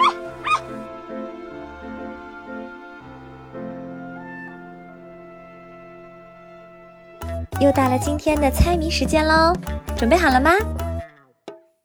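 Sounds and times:
small dog barking happily: 0.0s - 0.8s
soft steady music: 0.0s - 11.0s
speech: 7.6s - 10.8s.

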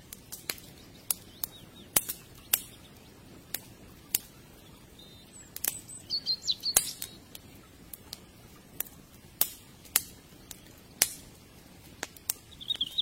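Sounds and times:
faint bright hisses: 0.0s - 13.0s
riverside campfire crackling and popping: 0.0s - 13.0s.

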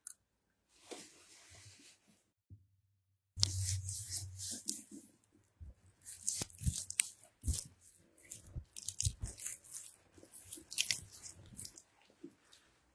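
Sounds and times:
razor scraping across stubble while shaving: 3.4s - 4.8s, 6.0s - 11.8s.

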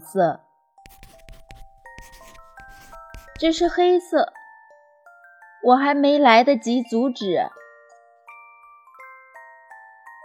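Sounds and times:
speech: 0.1s - 0.4s, 3.4s - 4.4s, 5.6s - 7.6s
pencil scratching out the outline of a flower on paper: 0.8s - 3.8s.

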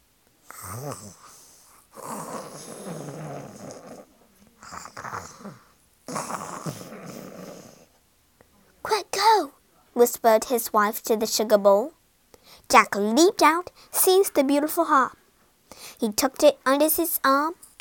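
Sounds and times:
voice imitating deep exaggerated snoring of a giant: 0.5s - 7.9s
speech: 0.8s - 1.2s, 10.0s - 12.0s, 12.7s - 15.2s, 16.0s - 17.8s.

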